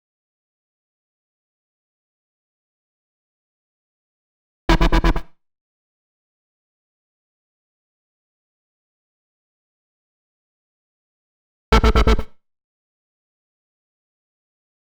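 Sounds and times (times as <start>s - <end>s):
A minor bass synth: 4.7s - 5.2s, 11.8s - 12.3s.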